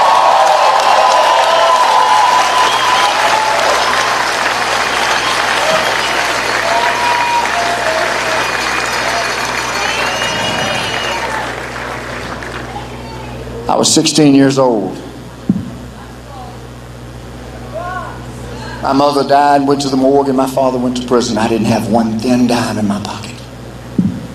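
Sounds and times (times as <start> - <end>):
crowd applause at an outdoor rally: 0.0 - 13.6
speech: 13.8 - 15.0, 18.8 - 23.2.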